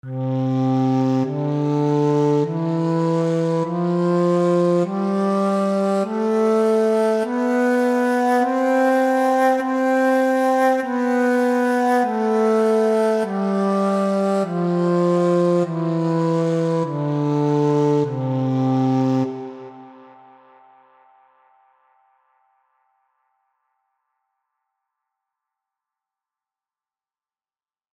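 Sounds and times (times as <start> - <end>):
kaval flute: 0.0 - 21.0.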